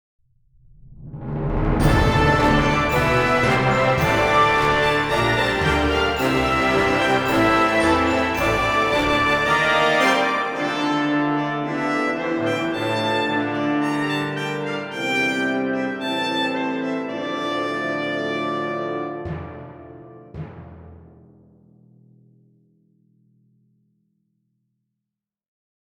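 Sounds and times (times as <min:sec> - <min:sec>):
victorious neutral music: 0:01.0 - 0:24.7.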